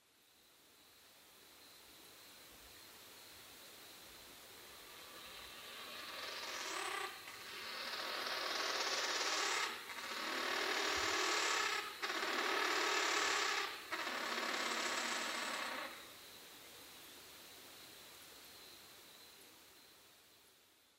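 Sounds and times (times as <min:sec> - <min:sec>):
musasabi: 0:04.8 - 0:16.0.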